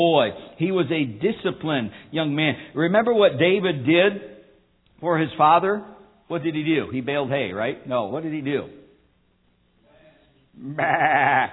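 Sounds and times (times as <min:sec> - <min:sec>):
speech: 0:00.0 - 0:04.3, 0:05.0 - 0:08.8, 0:10.6 - 0:11.5
single sheep bleating: 0:10.6 - 0:11.5.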